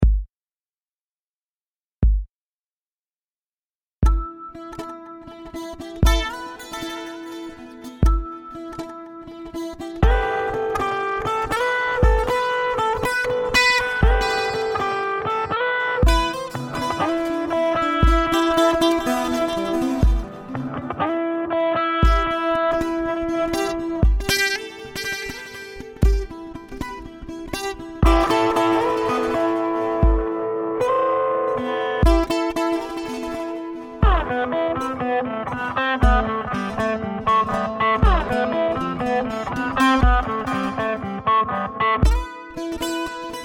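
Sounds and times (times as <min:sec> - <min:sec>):
two guitars improvising: 0:04.0 - 0:43.4.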